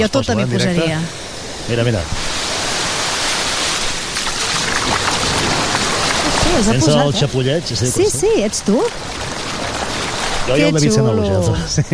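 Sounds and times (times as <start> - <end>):
speech: 0.0 - 2.4, 6.5 - 9.2, 10.5 - 11.9
two people's feet splashing and wading in shallow sea water at a beach: 2.2 - 6.8, 8.2 - 10.6.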